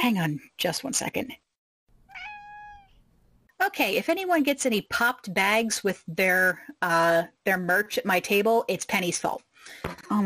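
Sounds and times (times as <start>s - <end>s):
speech: 0.0s - 1.4s, 3.6s - 10.2s
cat meowing: 2.0s - 3.0s.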